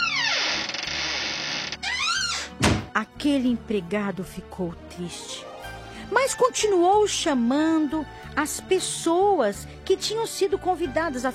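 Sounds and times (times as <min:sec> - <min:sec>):
door hinge creaking as a man shuts the door: 0:00.0 - 0:02.9
speech: 0:03.2 - 0:05.5, 0:06.2 - 0:11.3.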